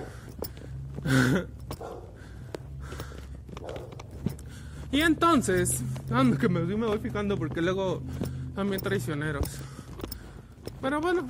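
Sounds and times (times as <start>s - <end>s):
speech: 1.1s - 2.1s, 4.9s - 9.7s, 10.8s - 11.2s
light taps: 1.6s - 11.2s
dog barking: 1.8s - 2.2s, 3.6s - 4.0s.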